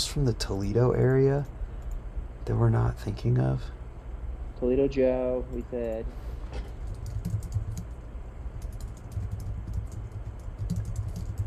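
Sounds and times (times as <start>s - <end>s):
speech: 0.0s - 1.6s, 2.4s - 3.8s, 4.6s - 6.3s
low steady hum: 0.0s - 11.4s
computer keyboard typing: 6.7s - 8.0s, 8.6s - 11.4s.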